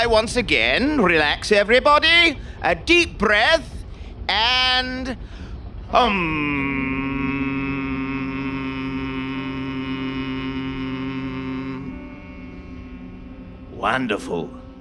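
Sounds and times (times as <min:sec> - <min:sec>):
speech: 0:00.0 - 0:07.0, 0:13.8 - 0:14.6
several voices humming together during a relaxation exercise: 0:05.9 - 0:14.7.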